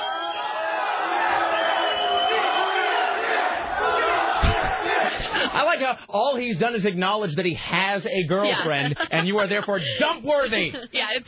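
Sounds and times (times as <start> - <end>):
large crowd at a live show in Portland cheering and yelling: 0.0 - 5.4
laughter: 3.8 - 5.7, 8.3 - 11.0
speech: 5.5 - 11.2.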